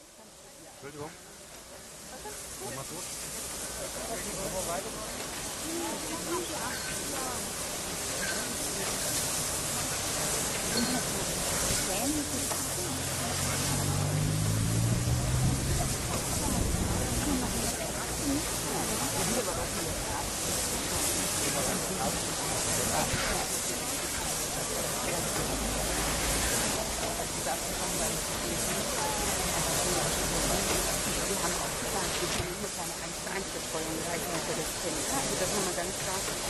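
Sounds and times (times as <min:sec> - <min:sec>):
faint voices murmuring: 0:00.0 - 0:36.4
locomotive steam-like hiss: 0:00.0 - 0:36.4
speech: 0:00.8 - 0:01.3, 0:02.2 - 0:09.2, 0:11.9 - 0:14.0
low grinding rumble of a locomotive rolling onto a turntable: 0:13.2 - 0:18.3.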